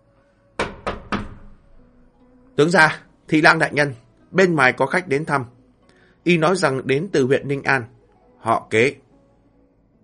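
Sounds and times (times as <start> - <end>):
firm knocking on a study door: 0.6 - 1.8
speech: 2.6 - 5.6, 6.2 - 9.0.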